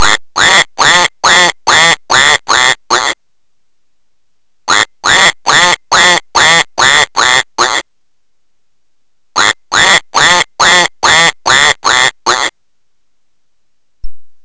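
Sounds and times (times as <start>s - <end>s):
duck: 0.0s - 3.2s, 4.7s - 7.8s, 9.4s - 12.5s.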